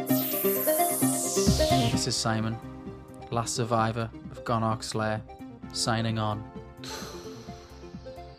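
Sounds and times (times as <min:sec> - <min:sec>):
door-opening sound effect electronic whir with pulsing low tones and hiss: 0:00.1 - 0:02.1
speech: 0:02.0 - 0:02.7, 0:03.3 - 0:07.1.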